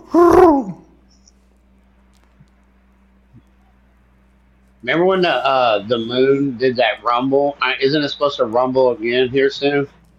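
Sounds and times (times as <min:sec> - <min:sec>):
person imitating an owl hoot: 0:00.0 - 0:01.0
speech: 0:04.8 - 0:10.1.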